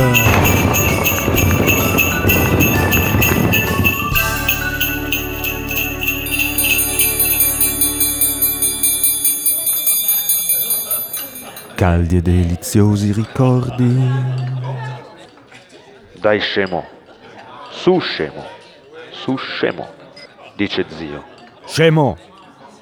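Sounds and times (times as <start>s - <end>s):
jingling bells in a festive Christmas setting: 0.0s - 11.9s
speech: 11.9s - 14.6s, 16.2s - 17.0s, 17.8s - 18.6s, 19.2s - 20.0s, 20.6s - 22.3s.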